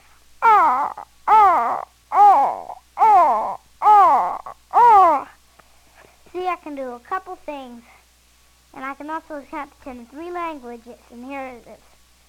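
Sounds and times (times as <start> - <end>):
person imitating a crow cawing: 0.4 - 5.3
speech: 6.7 - 8.0, 8.8 - 11.9.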